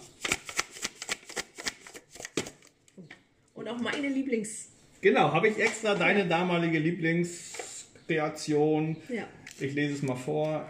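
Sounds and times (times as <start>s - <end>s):
packet of instant mashed potatoes with meatballs and seasoning sachets shaken: 0.0s - 2.7s
speech: 3.7s - 7.5s, 8.1s - 10.6s.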